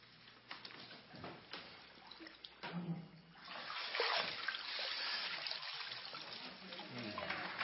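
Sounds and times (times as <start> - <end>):
water splashing and sloshing during baptism by immersion: 1.6 - 7.5.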